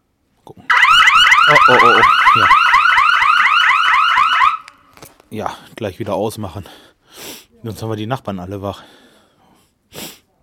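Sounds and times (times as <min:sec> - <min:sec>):
motion-triggered electronic alarm wailing: 0:00.7 - 0:04.7
speech: 0:01.7 - 0:02.6, 0:05.3 - 0:06.9, 0:07.6 - 0:09.0.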